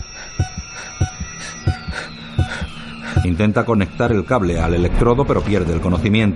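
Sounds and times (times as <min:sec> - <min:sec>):
steady heartbeat heard over a monitor: 0:00.0 - 0:03.4, 0:04.0 - 0:04.4
speech: 0:03.2 - 0:06.3.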